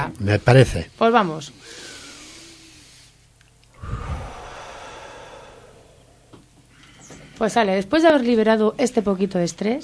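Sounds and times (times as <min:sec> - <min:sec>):
speech: 0:00.0 - 0:01.9, 0:07.4 - 0:09.8
several people taking a deep breath together: 0:01.6 - 0:07.5.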